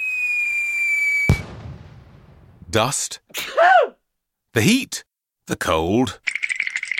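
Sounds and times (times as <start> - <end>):
firework whistling in a high steady tone: 0.0 - 1.8
firework bursting with a sharp bang: 1.2 - 2.6
speech: 2.8 - 6.4.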